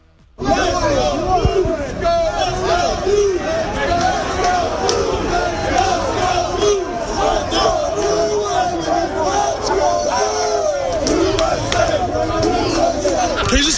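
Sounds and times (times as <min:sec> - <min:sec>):
large crowd of sports fans chanting and shouting outdoors outside arena: 0:00.2 - 0:13.7.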